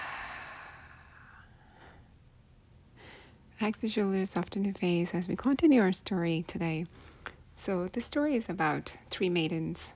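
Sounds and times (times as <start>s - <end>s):
deep breath and exhale: 0.0s - 2.1s
speech: 3.6s - 9.9s.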